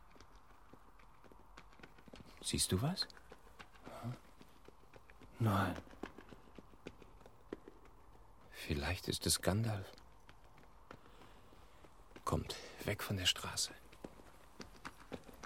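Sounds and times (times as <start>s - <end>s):
horse hooves plodding at a walking pace: 0.0s - 15.4s
speech: 2.4s - 3.2s, 5.4s - 5.9s, 8.6s - 10.0s, 12.3s - 13.8s.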